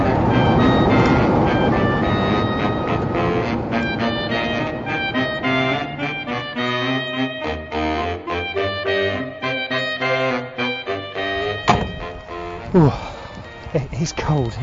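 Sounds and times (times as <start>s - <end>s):
Class 47 diesel locomotive rumbling in railway sidings in cold heavy rain: 0.0s - 14.6s
sharp metallic thunks: 11.5s - 12.4s
speech: 12.8s - 13.0s, 14.0s - 14.6s.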